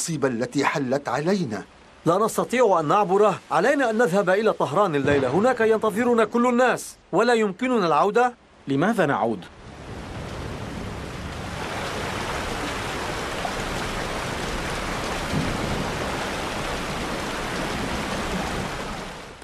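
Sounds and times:
speech: 0.0 - 9.6
floodwater rushing over a desert road: 0.0 - 19.4
heavy rain in the desert: 0.0 - 19.4.

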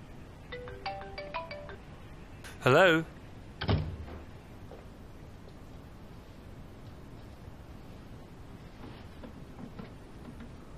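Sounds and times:
faint hum: 0.0 - 10.7
phone ringtone playing bright electronic tones in a melodic pattern: 0.5 - 2.0
speech: 2.6 - 3.2.

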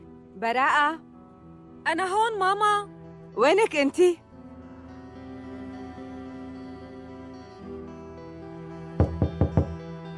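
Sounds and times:
speech: 0.4 - 1.1, 1.8 - 4.2
firm knocking on a locked door: 9.0 - 9.8.

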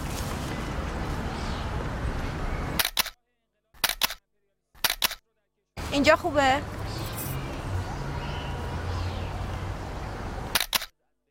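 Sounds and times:
noise: 0.0 - 11.2
camera shutter clicks: 2.8 - 3.2, 3.8 - 4.2, 4.8 - 5.2, 10.5 - 10.9
speech: 5.9 - 6.8.

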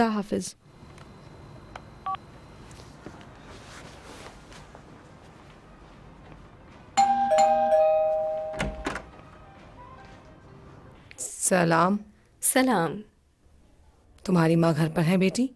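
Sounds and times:
speech: 0.0 - 0.6, 11.5 - 13.1, 14.3 - 15.5
loud electronic doorbell chime at a home's door: 7.0 - 8.9.

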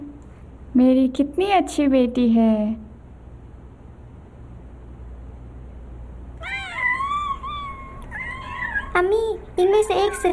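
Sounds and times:
faint low noise: 0.0 - 10.3
speech: 0.7 - 2.8, 9.9 - 10.3
cat meowing: 6.4 - 9.1.

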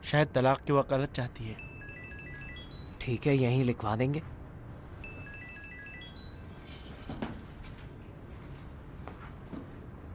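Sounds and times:
speech: 0.1 - 1.7, 3.1 - 4.4
phone ringtone electronic melody for an incoming call: 1.6 - 3.1, 5.0 - 6.6.

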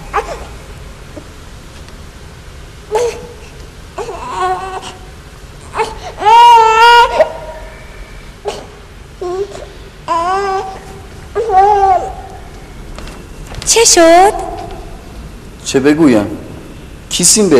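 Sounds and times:
baby crying in wailing bursts and sobs: 0.0 - 0.5, 2.9 - 3.4, 4.0 - 7.8, 8.4 - 12.5
speech: 13.8 - 14.4, 15.7 - 16.4, 17.1 - 17.5.

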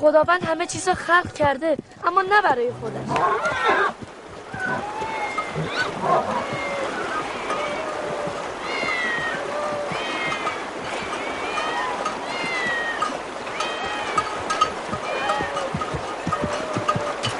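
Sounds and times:
speech: 0.0 - 4.0
constant rushing watery background: 0.0 - 17.3
many cats meowing: 4.5 - 14.4, 15.0 - 17.3.

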